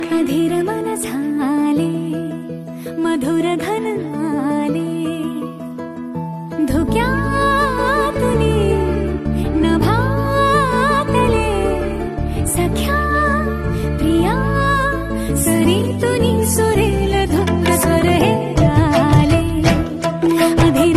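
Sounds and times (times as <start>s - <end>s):
Marathi romantic female love song ringtone: 0.0s - 20.9s.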